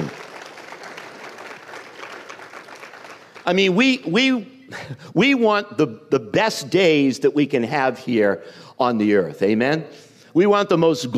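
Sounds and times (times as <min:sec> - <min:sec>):
congregation applauding: 0:00.0 - 0:03.5
speech: 0:03.5 - 0:11.1.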